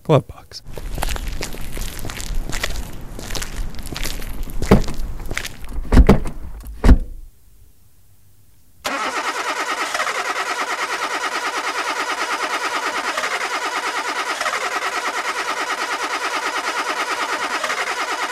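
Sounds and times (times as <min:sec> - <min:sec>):
speech: 0:00.1 - 0:01.2
car engine cranking without starting: 0:00.7 - 0:07.3, 0:08.9 - 0:18.3.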